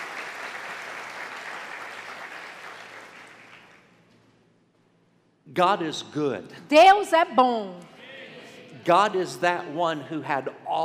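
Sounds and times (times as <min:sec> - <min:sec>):
audience applauding: 0:00.0 - 0:03.9
speech: 0:05.5 - 0:07.9, 0:08.8 - 0:10.8.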